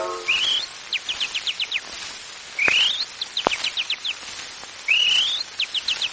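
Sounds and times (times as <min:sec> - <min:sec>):
whistled imitation of chaffinch song: 0:00.0 - 0:01.9, 0:02.5 - 0:04.2, 0:04.8 - 0:06.1.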